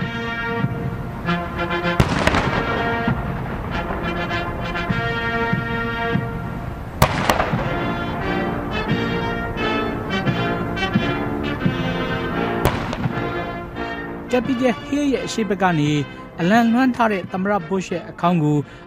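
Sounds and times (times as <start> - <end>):
sustained military band music: 0.0 - 18.8
cannons firing a salute for a presidential funeral: 0.6 - 14.2
speech: 14.4 - 18.8.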